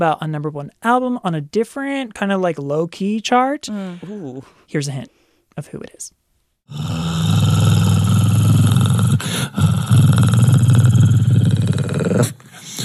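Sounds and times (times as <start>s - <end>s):
speech: 0.0s - 7.4s
dog growling: 6.7s - 12.4s.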